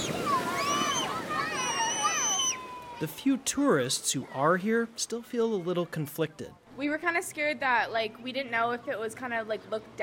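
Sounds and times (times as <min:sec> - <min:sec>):
ocean surf breaking on a beach in Hawaii: 0:00.0 - 0:05.9
children calling and shouting while swimming in waves: 0:00.0 - 0:06.7
speech: 0:03.0 - 0:10.0.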